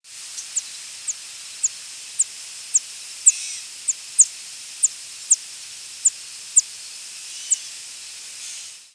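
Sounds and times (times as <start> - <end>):
steady hiss: 0.0 - 8.9
Northern Parula flight calls in flight: 0.2 - 8.9
Gray Catbird calling in the background: 0.4 - 5.4, 7.3 - 7.8.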